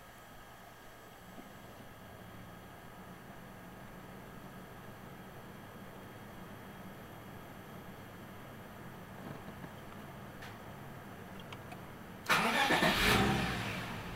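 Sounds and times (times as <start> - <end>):
engine starting inside a garage: 12.3 - 14.0.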